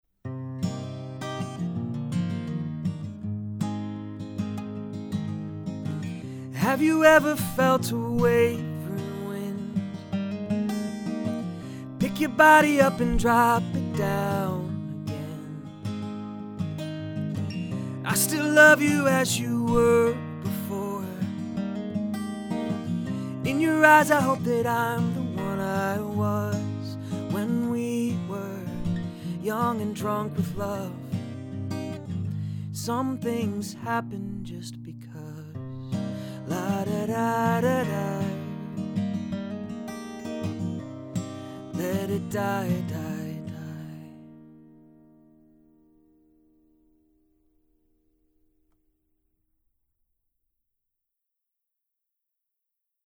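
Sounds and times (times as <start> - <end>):
music recorded with a cardioid USB mic: 0.2 - 48.1.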